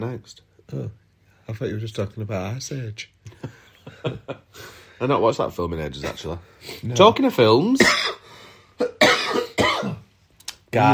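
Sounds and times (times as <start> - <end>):
speech: 0.0 - 8.2, 8.8 - 9.4, 10.7 - 10.9
person coughing harshly: 7.8 - 8.2, 8.8 - 10.1.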